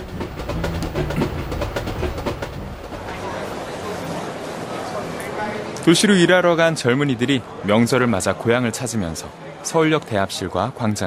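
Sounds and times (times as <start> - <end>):
packed holiday homecoming passenger train running on rails: 0.0 - 5.4
crowd's indistinct chatter: 0.0 - 11.0
speech: 5.8 - 11.0.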